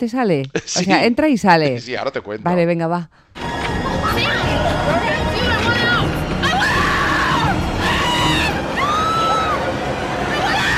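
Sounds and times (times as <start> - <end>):
speech: 0.0 - 3.2
dense crowd murmur: 3.4 - 10.7
people screaming and shrieking in a haunted house attraction: 3.4 - 10.7.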